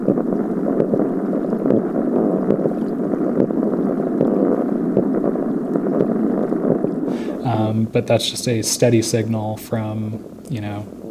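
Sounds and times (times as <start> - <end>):
faint clicks: 0.0 - 7.1
spotted sea trout spawning chorus grunting underwater through a hydrophone: 0.0 - 11.0
speech: 7.8 - 11.0.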